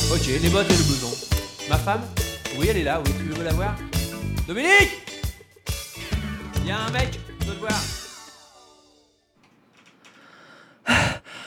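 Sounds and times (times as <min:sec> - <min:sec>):
speech: 0:00.2 - 0:03.9, 0:04.5 - 0:05.1, 0:06.7 - 0:08.0
person panting out of breath: 0:10.2 - 0:11.4.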